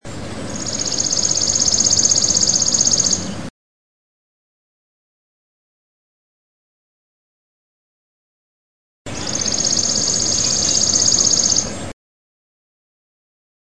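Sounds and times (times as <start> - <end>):
Chipping Sparrow singing: 0.0 - 3.5, 9.1 - 11.9.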